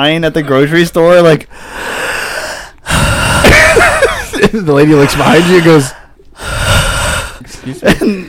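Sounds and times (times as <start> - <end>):
speech: 0.0 - 2.2, 3.7 - 6.6, 7.7 - 8.2
loud exaggerated human gasping breath with wheezy rasp: 1.5 - 4.1, 4.8 - 7.8
laughter: 3.5 - 5.9, 7.5 - 8.2.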